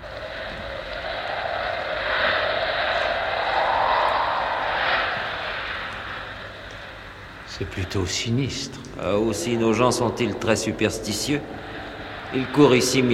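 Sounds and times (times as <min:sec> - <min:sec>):
strong wind howling: 0:00.0 - 0:13.1
speech: 0:07.6 - 0:11.7, 0:12.3 - 0:13.1.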